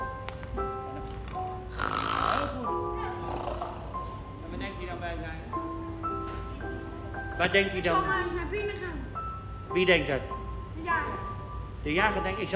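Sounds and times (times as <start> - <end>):
music or tones: 0.0 - 12.5
person imitating loud drawn-out snoring: 1.7 - 4.0
speech: 7.4 - 8.9, 9.7 - 11.2, 11.8 - 12.5.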